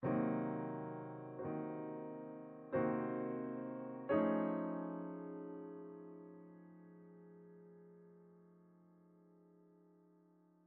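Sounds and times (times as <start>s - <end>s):
boss piano music: 0.0s - 8.5s.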